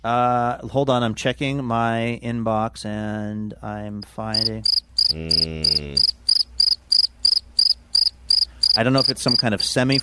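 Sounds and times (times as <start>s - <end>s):
speech: 0.0s - 6.1s, 8.8s - 10.0s
crickets chirping in bright high trills: 4.3s - 10.0s.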